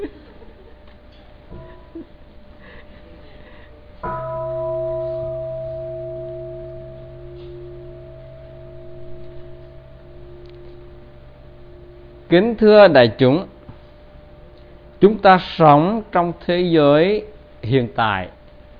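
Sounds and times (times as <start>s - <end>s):
mindfulness bell struck and ringing with a clear tone: 4.0s - 14.9s
speech: 12.3s - 13.5s, 15.0s - 18.4s.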